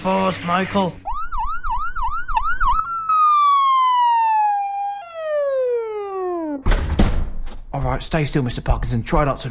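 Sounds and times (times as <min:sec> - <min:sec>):
speech: 0:00.0 - 0:01.1, 0:07.8 - 0:09.4
ambulance siren yelping and wailing: 0:01.0 - 0:06.7.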